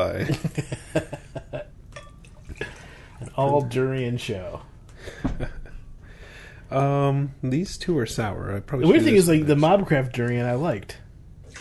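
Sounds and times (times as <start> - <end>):
speech: 0.0 - 1.0, 3.4 - 5.3, 6.7 - 11.0
rinse water pouring into a glass during a beer tasting: 2.0 - 3.7.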